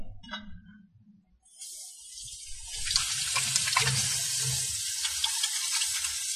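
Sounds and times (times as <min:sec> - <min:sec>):
tap water running: 0:01.6 - 0:06.3
hands washed under running tap water: 0:02.6 - 0:06.3.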